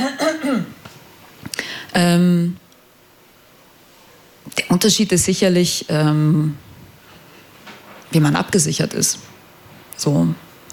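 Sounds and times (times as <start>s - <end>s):
person clearing throat: 0.0s - 0.8s
speech: 2.0s - 2.6s, 4.7s - 6.7s, 8.1s - 9.3s, 10.0s - 10.7s.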